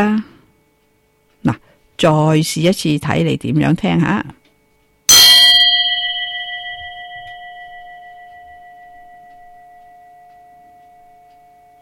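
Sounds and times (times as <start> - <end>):
speech: 0.0 - 0.3, 1.4 - 4.4
single bell struck and ringing: 5.1 - 10.7.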